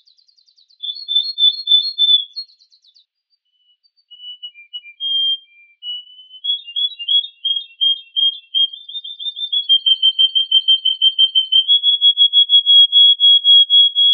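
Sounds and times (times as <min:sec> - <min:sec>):
Yorkshire and Russian canary singing a chirping trill and warbling run: 0:00.0 - 0:14.1.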